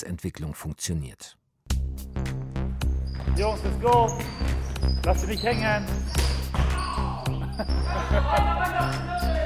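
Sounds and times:
speech: 0.0 - 1.4, 3.4 - 6.4, 7.6 - 9.4
shoe squeaks: 2.9 - 8.2
several basketballs bouncing on a hard floor in a large indoor hall: 3.0 - 7.8
laughter: 7.3 - 9.4.

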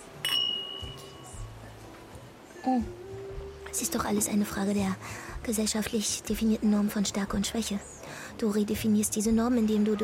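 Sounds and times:
drinking glasses clinking in a toast: 0.2 - 1.4
speech: 2.6 - 3.0, 3.8 - 10.0.

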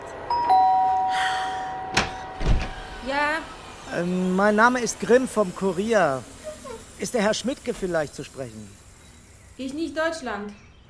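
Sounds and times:
doorbell chime: 0.3 - 2.4
speech: 3.4 - 6.3, 7.0 - 8.8, 9.6 - 10.6.

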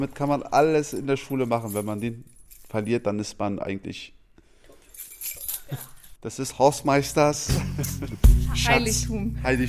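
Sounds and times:
speech: 0.0 - 4.2, 5.0 - 9.6
bunch of keys jangling: 0.9 - 3.0, 4.7 - 6.2
laughter: 7.5 - 8.4.

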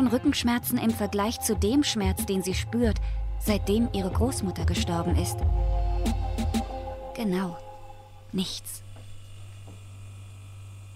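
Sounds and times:
speech: 0.0 - 6.2, 7.2 - 7.6, 8.3 - 8.8
refrigerator humming with a faint electrical buzz: 5.4 - 10.9.

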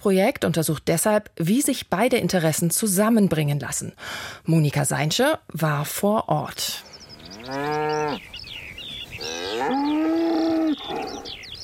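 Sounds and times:
speech: 0.0 - 8.3
birdsong: 6.4 - 11.6
cows mooing on a pasture: 7.0 - 8.2, 9.2 - 11.4.

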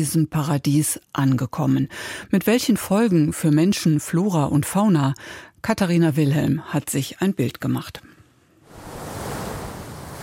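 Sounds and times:
speech: 0.0 - 8.1
ocean waves crashing onto a beach: 8.6 - 10.2.

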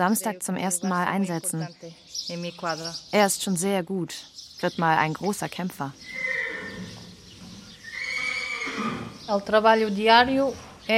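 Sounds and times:
speech: 0.0 - 6.4, 9.3 - 10.9
Lusitano stallion neighing: 6.0 - 9.2.

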